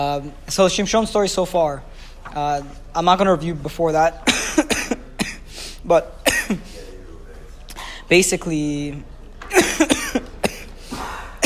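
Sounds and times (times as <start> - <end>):
speech: 0.0 - 4.8, 5.8 - 6.7, 8.1 - 10.2
harsh dry coughs: 4.2 - 5.6, 6.2 - 6.8, 9.5 - 11.4.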